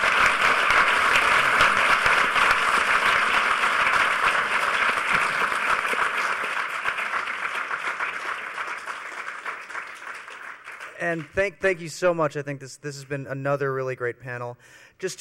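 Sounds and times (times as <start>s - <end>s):
conference audience applauding panelists: 0.0s - 11.9s
speech: 11.1s - 15.2s.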